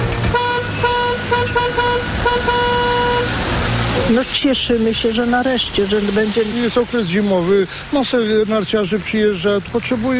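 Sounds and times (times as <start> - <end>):
vehicles driving past across a bridge: 0.0 - 10.1
celebratory car horns honking: 0.3 - 4.0
speech: 4.1 - 10.1.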